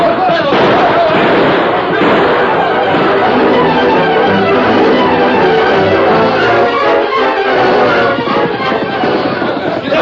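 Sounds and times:
gunshots in a western radio drama shootout: 0.0s - 7.7s
voices shouting in a western radio drama shootout: 1.9s - 10.0s.

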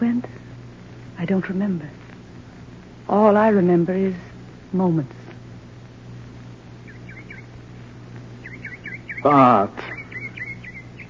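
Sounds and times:
steady low hum: 0.0s - 11.0s
speech: 1.2s - 2.0s, 3.1s - 5.2s, 9.2s - 9.9s
bird calling in warbling notes: 6.8s - 7.5s, 8.4s - 11.0s.

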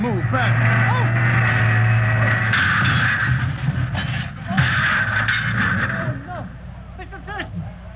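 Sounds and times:
scattered clattering debris: 0.0s - 6.2s
loud crashing thuds of a truck hitting a building: 0.0s - 6.5s
heavy driverless truck engine rumbling while backing up: 0.0s - 7.9s.

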